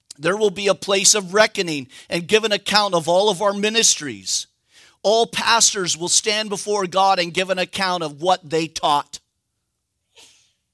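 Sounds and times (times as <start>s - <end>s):
speech: 0.2s - 9.2s
sneeze: 10.1s - 10.6s.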